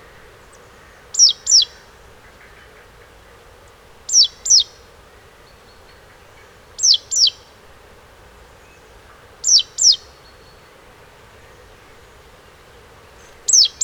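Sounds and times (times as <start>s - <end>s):
Great tit Parus major calling: 0.5s - 2.9s, 4.0s - 4.8s, 5.5s - 7.5s, 9.4s - 10.7s, 13.2s - 13.8s.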